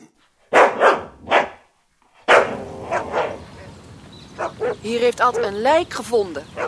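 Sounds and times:
dogs barking and yelping: 0:00.5 - 0:01.6, 0:02.2 - 0:05.7, 0:06.5 - 0:06.6
speech: 0:04.8 - 0:06.6.

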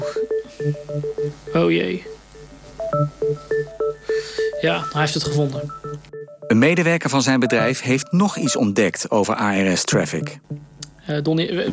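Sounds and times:
phone message notification chime of bright electronic notes: 0:00.0 - 0:08.9
speech: 0:00.6 - 0:02.1, 0:03.0 - 0:03.7, 0:04.6 - 0:05.9, 0:06.5 - 0:11.7.

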